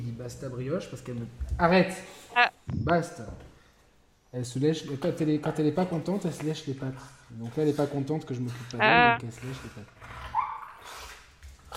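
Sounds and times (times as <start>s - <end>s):
speech: 0.2s - 3.5s, 4.3s - 10.2s
dog barking made to bark by its owner: 10.3s - 10.8s.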